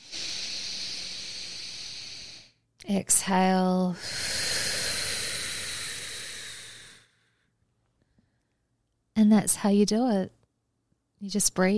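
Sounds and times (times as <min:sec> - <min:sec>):
person inhaling deeply: 0:00.0 - 0:02.6, 0:03.9 - 0:07.5
speech: 0:02.9 - 0:04.4, 0:09.2 - 0:10.4, 0:11.2 - 0:11.7.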